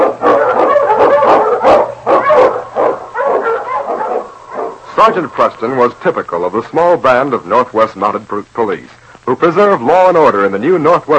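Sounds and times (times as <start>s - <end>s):
Eskimo lead sled dog barking and yipping excitedly: 0.0s - 4.8s
speech: 5.0s - 11.1s.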